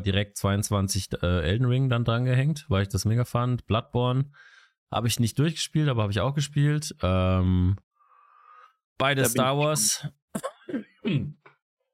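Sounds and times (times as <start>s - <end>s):
speech: 0.0s - 7.9s, 9.0s - 11.5s
person coughing with rough throaty bursts: 9.4s - 11.4s.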